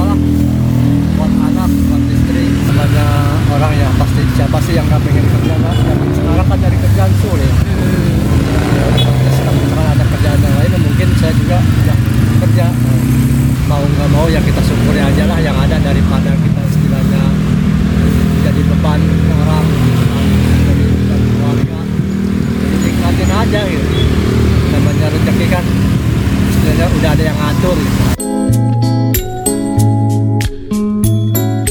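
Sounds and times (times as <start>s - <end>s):
dense road traffic with cars and motorcycles in Lebak Indonesia: 0.0s - 28.2s
music: 27.6s - 31.6s.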